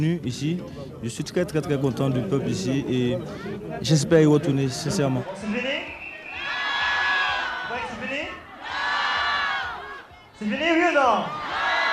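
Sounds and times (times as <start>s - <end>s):
speech: 0.0s - 5.9s, 10.4s - 11.4s
large concert crowd in Niamey shouting and cheering: 5.3s - 11.9s.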